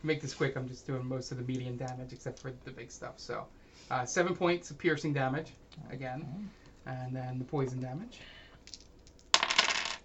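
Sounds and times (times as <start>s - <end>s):
speech: 0.0s - 8.8s
many dice rolling across a hard table in a tabletop game: 8.7s - 10.0s.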